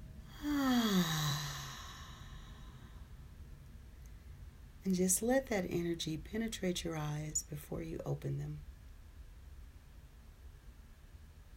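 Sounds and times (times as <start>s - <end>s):
deep breath exhaled as a long soft voiced sigh: 0.3s - 3.2s
speech: 4.9s - 8.7s.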